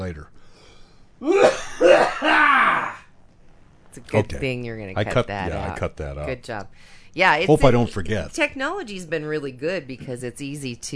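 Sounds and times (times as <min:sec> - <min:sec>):
speech: 0:00.0 - 0:00.4, 0:01.2 - 0:02.9, 0:04.0 - 0:10.9
person coughing: 0:01.2 - 0:03.0.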